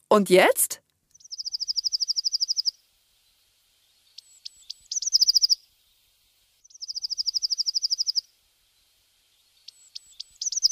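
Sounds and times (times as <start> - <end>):
speech: 0.2 - 0.8
Eurasian blue tit singing: 1.1 - 2.8, 4.1 - 5.6, 6.6 - 8.3, 9.6 - 10.6.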